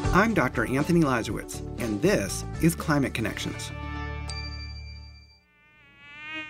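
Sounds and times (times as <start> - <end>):
speech: 0.1 - 3.8
mosquito whining: 5.4 - 6.4.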